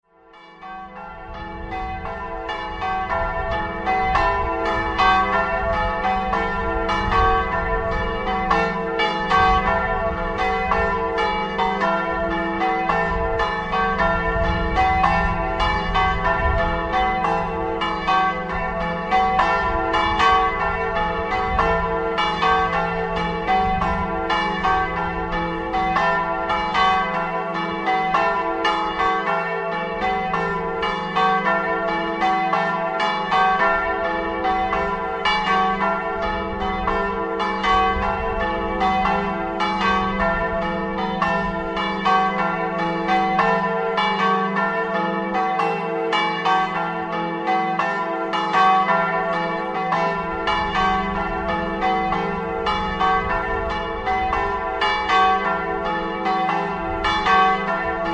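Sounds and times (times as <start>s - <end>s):
bells in Sutrio: 0.1s - 58.1s.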